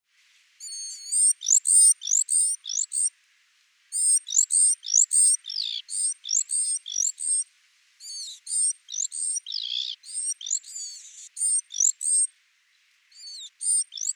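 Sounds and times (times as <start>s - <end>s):
Great tit (Parus major) scratchy chattering and sweeping whistles: 0.6s - 3.1s, 4.0s - 7.4s, 8.0s - 12.3s, 13.2s - 14.1s.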